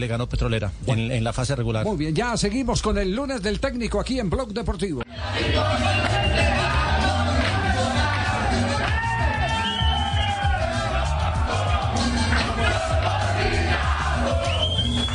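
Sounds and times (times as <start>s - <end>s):
speech: 0.0s - 6.8s
group cheering whooping and shouting at a victory celebration: 5.1s - 15.1s.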